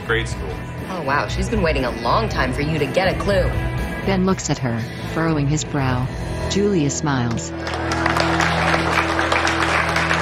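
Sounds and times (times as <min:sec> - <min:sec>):
speech: 0:00.1 - 0:08.0
audience clapping at a dance: 0:07.3 - 0:10.2.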